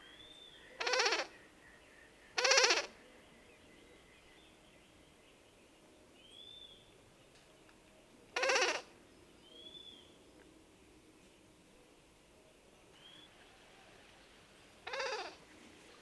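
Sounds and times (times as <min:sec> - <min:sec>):
Bay-breasted Cuckoo giving harsh bleating calls: 0:00.8 - 0:01.3, 0:02.4 - 0:02.9, 0:08.4 - 0:08.9, 0:14.8 - 0:15.4.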